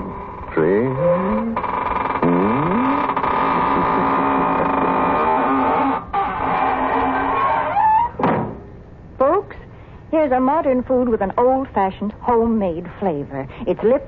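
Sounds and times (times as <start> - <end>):
steady low hum: 0.0 - 14.0
squeaking door closing: 0.2 - 8.7
speech: 0.6 - 1.7, 10.3 - 14.0
door thud as it closes: 8.2 - 8.7.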